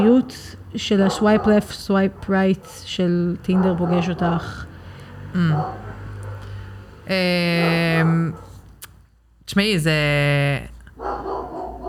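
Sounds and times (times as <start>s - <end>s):
speech: 0.0s - 4.7s, 5.3s - 5.9s, 7.1s - 8.4s, 9.5s - 11.1s
dogs barking: 0.9s - 4.8s, 5.4s - 6.8s, 7.4s - 8.7s, 10.9s - 11.8s.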